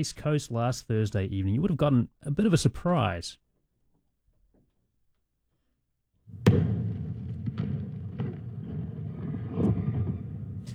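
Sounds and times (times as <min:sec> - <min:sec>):
speech: 0:00.0 - 0:03.4
Blue Origin New Glenn rocket exploding during a launch pad test at Cape Canaveral: 0:06.3 - 0:10.7
thuds of the rocket explosion: 0:06.3 - 0:10.7.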